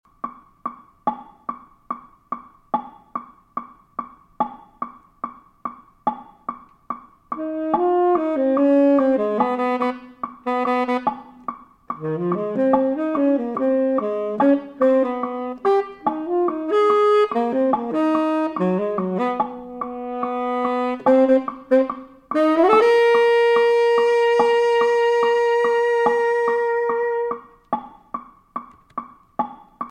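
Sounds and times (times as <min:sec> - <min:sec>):
Latin jazz with tenor: 0:07.3 - 0:28.4.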